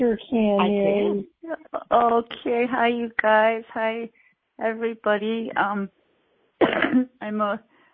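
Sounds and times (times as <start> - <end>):
speech: 0.0 - 6.0, 6.6 - 7.7
person coughing: 6.6 - 7.2.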